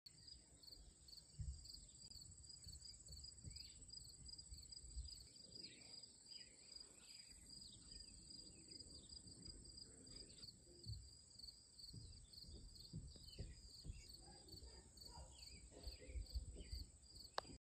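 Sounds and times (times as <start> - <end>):
crickets chirping in summer: 0.2 - 17.5.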